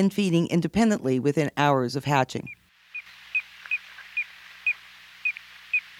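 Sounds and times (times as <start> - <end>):
speech: 0.0 - 2.6
soft steady hiss: 0.1 - 5.9
piping plover short clear whistled peeps: 2.4 - 5.9.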